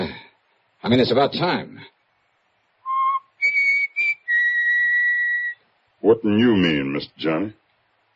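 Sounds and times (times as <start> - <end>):
speech: 0.8 - 1.9, 6.0 - 7.6
person whistling a short tune: 2.9 - 5.6.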